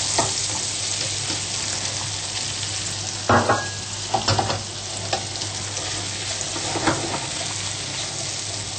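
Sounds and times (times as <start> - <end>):
sliced mushrooms frying in a pan: 0.0 - 8.7
clatters and scrapes as mushrooms are tossed around in a pan: 4.2 - 8.2.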